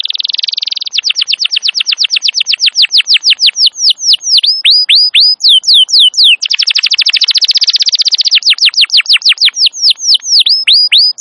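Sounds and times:
wild canary singing: 0:00.0 - 0:11.2.

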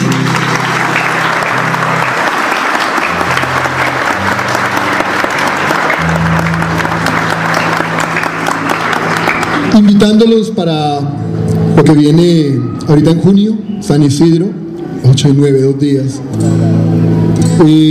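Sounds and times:
applause of many hands clapping at a church gathering: 0:00.0 - 0:10.4
speech: 0:09.9 - 0:11.2, 0:11.8 - 0:17.8.

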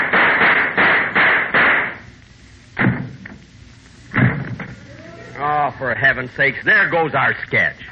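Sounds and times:
gunshot sound effects in a comedy sketch: 0:00.0 - 0:02.0, 0:02.8 - 0:03.3, 0:04.1 - 0:04.7
heavy thumps: 0:00.0 - 0:02.1, 0:02.7 - 0:05.1
speech: 0:05.8 - 0:07.9.

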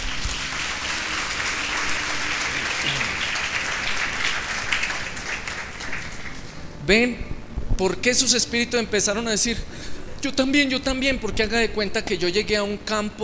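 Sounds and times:
crowd clapping for a woman at a church seminar: 0:00.0 - 0:06.8
speech: 0:06.9 - 0:13.2.

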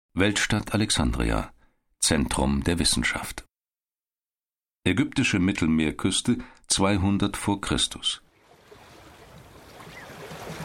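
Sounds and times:
speech: 0:00.2 - 0:03.5, 0:04.8 - 0:08.2
sea water washing as a ship glides through a gently rippling sea: 0:08.5 - 0:10.6.

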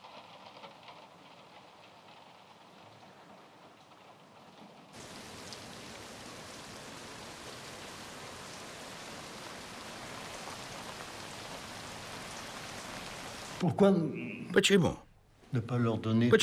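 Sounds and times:
steady rain falling outside at night: 0:00.0 - 0:13.6
speech: 0:13.6 - 0:16.4.

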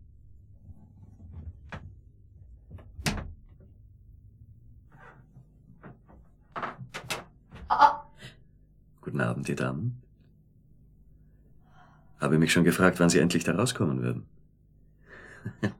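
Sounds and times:
door knocks and creaks: 0:00.4 - 0:03.8, 0:04.9 - 0:07.8
door being opened quietly at night, thumps and clicks: 0:02.6 - 0:03.8, 0:05.8 - 0:07.7
speech: 0:09.2 - 0:10.0, 0:12.2 - 0:14.4.

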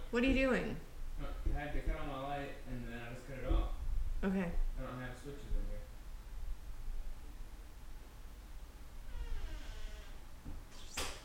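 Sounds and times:
speech: 0:00.1 - 0:05.9
house door creaking with a long scraping groan: 0:09.0 - 0:11.2.

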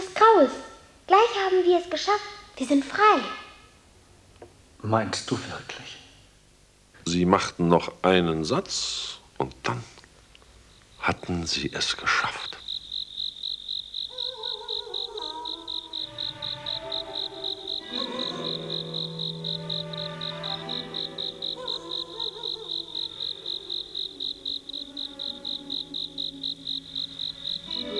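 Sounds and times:
cricket chirping on a warm summer night: 0:00.0 - 0:27.9
speech: 0:00.2 - 0:03.4, 0:04.8 - 0:06.0, 0:07.1 - 0:10.0, 0:11.0 - 0:12.6
soft melodic music bed: 0:15.4 - 0:27.9.

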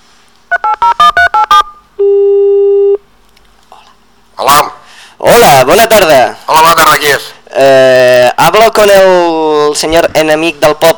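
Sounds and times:
long steady telephone line tone: 0:00.5 - 0:03.0
telephone dial-pad beeps on a phone-in line: 0:00.5 - 0:03.0
speech: 0:05.6 - 0:10.9.

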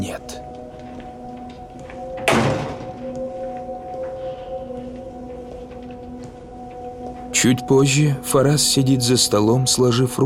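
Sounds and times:
glass door at the top of a staircase opening with a thud: 0:02.2 - 0:03.0
speech: 0:07.4 - 0:10.2.

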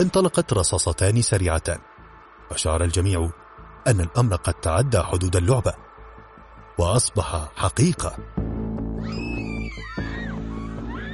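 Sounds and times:
speech: 0:00.0 - 0:01.9, 0:02.5 - 0:05.9, 0:06.8 - 0:09.2
steady music: 0:00.0 - 0:11.1
terrified scream: 0:08.9 - 0:11.1.

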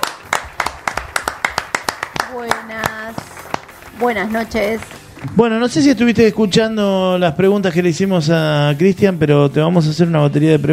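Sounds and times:
audience applause for a guest at an evening show: 0:00.0 - 0:05.6
speech: 0:02.3 - 0:03.4, 0:04.0 - 0:10.7.

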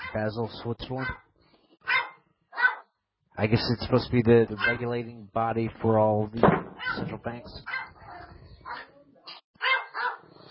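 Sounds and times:
dog barking: 0:00.0 - 0:00.3, 0:01.0 - 0:02.9, 0:04.6 - 0:04.9, 0:06.8 - 0:09.0, 0:09.6 - 0:10.3
speech: 0:00.1 - 0:01.3, 0:03.4 - 0:07.8.

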